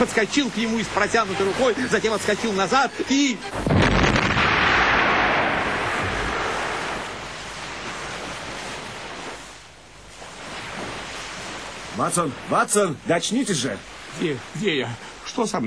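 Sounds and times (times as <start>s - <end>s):
speech: 0.0s - 4.2s, 12.0s - 15.6s
long churning wash of water after an explosion: 0.0s - 15.6s
loud booming underwater explosion: 3.6s - 8.6s.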